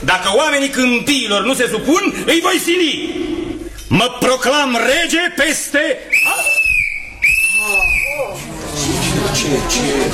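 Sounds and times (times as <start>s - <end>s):
speech: 0.0s - 3.3s, 3.9s - 6.6s, 7.6s - 10.1s
person whistling sustained sliding notes: 6.1s - 8.3s
murmur of crowd noise and indistinct voices: 6.5s - 10.1s.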